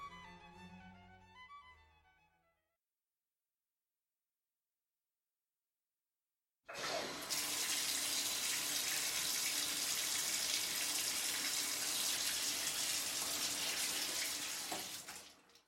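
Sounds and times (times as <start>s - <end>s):
running water in a bathroom: 7.0s - 15.6s.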